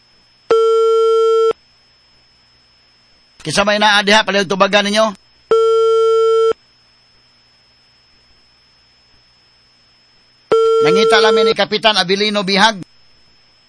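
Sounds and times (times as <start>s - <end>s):
electronic telephone ringback tone on an outgoing call to a barangay hall: 0.5s - 1.6s, 5.5s - 6.6s, 10.5s - 11.6s
speech: 3.4s - 5.2s, 11.3s - 12.9s.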